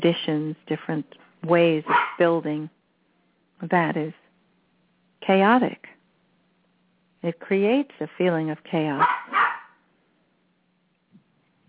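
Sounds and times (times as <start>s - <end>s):
speech: 0.0s - 2.8s, 3.6s - 4.2s, 5.2s - 5.9s, 7.2s - 9.6s
puppy barking at a cat: 1.8s - 2.2s, 9.0s - 9.8s.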